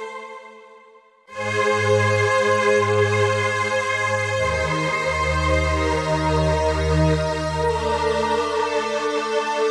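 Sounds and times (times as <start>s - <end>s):
high silk synth pad on a synthesizer: 1.3s - 9.6s.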